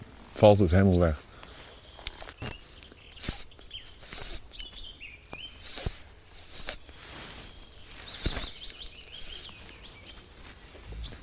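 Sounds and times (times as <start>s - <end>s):
speech: 0.4s - 1.2s
bird calling with thin high chirps and short whistles: 3.1s - 9.6s.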